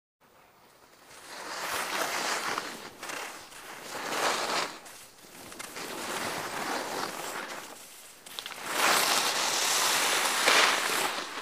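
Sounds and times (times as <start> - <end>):
skiing in the snow: 0.2 - 11.4.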